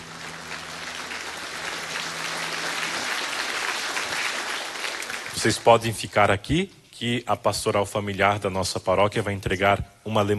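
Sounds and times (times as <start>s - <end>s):
audience applauding in church: 0.0s - 6.1s
speech: 5.4s - 10.3s.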